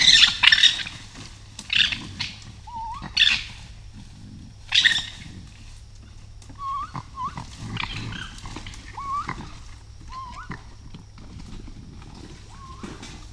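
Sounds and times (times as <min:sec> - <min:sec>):
raccoon chirps with short whistled notes rising at the end: 0:00.0 - 0:03.7, 0:04.6 - 0:05.5, 0:06.1 - 0:10.8, 0:12.0 - 0:13.3.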